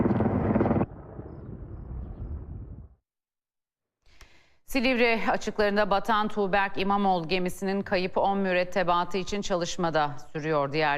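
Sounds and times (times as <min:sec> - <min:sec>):
firefighting helicopter rotor and engine noise over a wildfire: 0:00.0 - 0:01.4
speech: 0:04.7 - 0:10.9.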